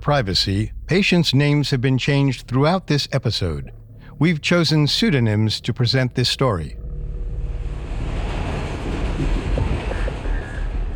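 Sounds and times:
speech: 0:00.0 - 0:06.8
train rumbling along rails with wheel clatter: 0:07.4 - 0:10.9.

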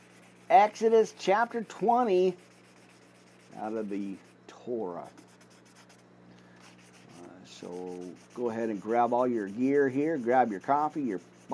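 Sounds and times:
highlighter marker rubbing on paper: 0:00.0 - 0:04.4, 0:05.0 - 0:06.0, 0:06.6 - 0:11.5
faint low hum: 0:00.0 - 0:11.5
speech: 0:00.5 - 0:02.5, 0:03.6 - 0:05.2, 0:07.6 - 0:11.5.

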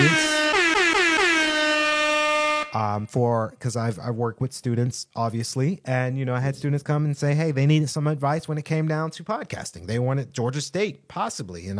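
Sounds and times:
air horn blaring with a brassy tone: 0:00.0 - 0:02.9
speech: 0:03.0 - 0:11.7.

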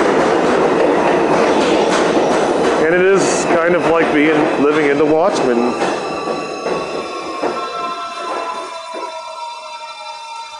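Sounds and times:
train rolling along the rails with rumble and rattle: 0:00.0 - 0:10.5
speech: 0:02.9 - 0:06.0.

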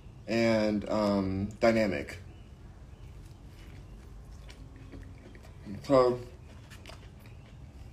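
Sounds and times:
speech: 0:00.3 - 0:02.2, 0:05.8 - 0:06.3
crunchy wet chewing: 0:02.9 - 0:07.9
loud bite into food: 0:03.1 - 0:07.9.

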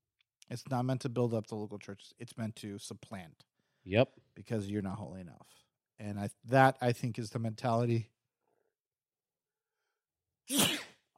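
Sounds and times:
speech: 0:00.5 - 0:08.2, 0:10.5 - 0:11.1
loud sneeze during allergy season: 0:10.5 - 0:11.1.

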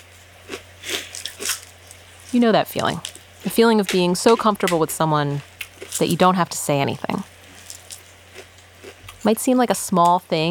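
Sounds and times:
two people chewing crunchy breakfast food: 0:00.0 - 0:06.1, 0:07.4 - 0:09.3
speech: 0:02.3 - 0:07.3, 0:09.2 - 0:10.4.

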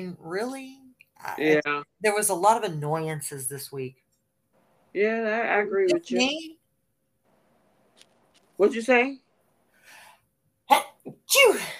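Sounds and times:
speech: 0:00.0 - 0:04.0, 0:04.9 - 0:06.6, 0:08.0 - 0:09.2, 0:10.7 - 0:11.7
loud sneeze with sharp breathy intake: 0:10.7 - 0:11.7.

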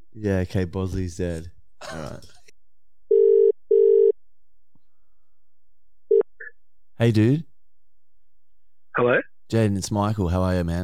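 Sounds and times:
speech: 0:00.2 - 0:02.4, 0:07.0 - 0:07.5, 0:09.0 - 0:10.8
phone ringback tone through the line: 0:03.1 - 0:04.1.

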